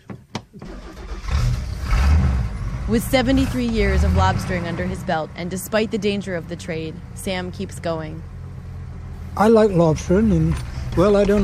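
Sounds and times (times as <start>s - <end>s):
sharp knocks and cranking thumps of a lobster boat engine: 0.0s - 0.8s, 10.3s - 11.4s
lobster boat engine being primed and started: 0.6s - 8.2s, 9.0s - 11.4s
speech: 2.9s - 8.3s, 9.4s - 11.4s.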